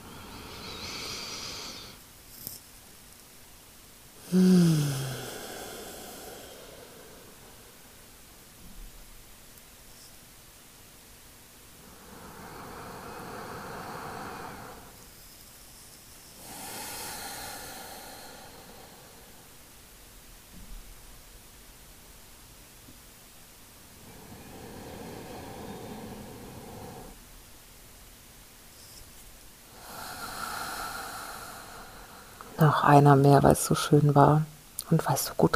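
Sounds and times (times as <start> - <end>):
slow deep breaths into the belly and chest: 0.0 - 2.1, 4.2 - 8.3, 11.8 - 15.1, 16.3 - 19.7, 23.9 - 27.2, 29.7 - 32.6
speech: 4.3 - 4.6, 32.6 - 35.5.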